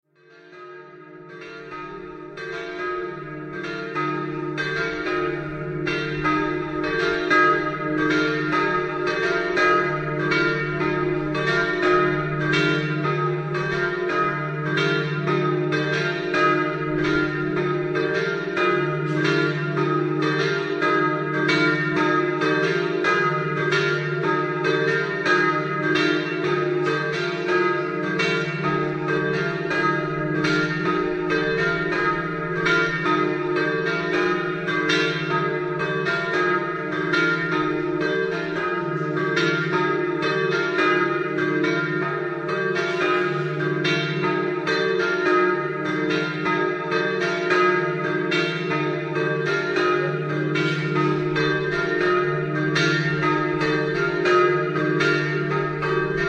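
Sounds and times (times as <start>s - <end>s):
bells ringing in Villanova delle Grotte: 0.4s - 56.2s.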